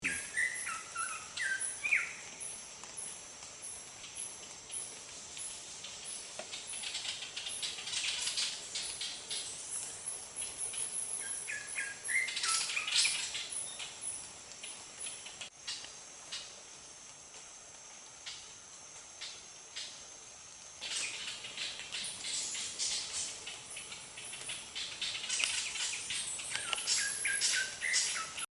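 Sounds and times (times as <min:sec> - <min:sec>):
black-cheeked ant tanager singing: 0:00.0 - 0:03.1, 0:05.8 - 0:15.8, 0:20.8 - 0:28.4.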